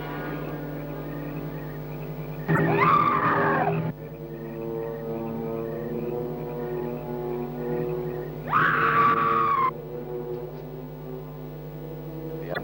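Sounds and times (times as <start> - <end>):
low eerie droning hum: 0.0 - 12.6
ghostly woman screaming in an ancient cemetery: 2.5 - 3.9, 8.5 - 9.7.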